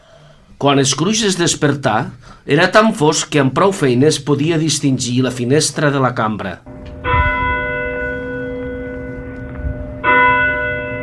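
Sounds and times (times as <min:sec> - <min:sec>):
speech: 0:00.6 - 0:06.8
church bell tolling: 0:06.7 - 0:11.0.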